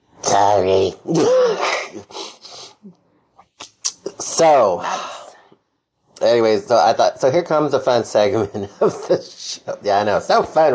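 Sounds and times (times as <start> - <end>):
speech: 0.4 - 2.1, 4.4 - 5.1, 6.2 - 10.7
person sneezing: 1.1 - 2.9.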